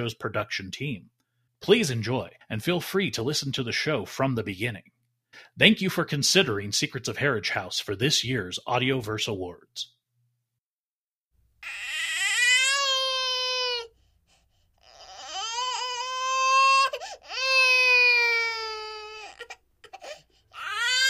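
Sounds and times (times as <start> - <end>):
speech: 0.0 - 10.0
fussy baby crying: 11.6 - 14.0, 14.8 - 21.0.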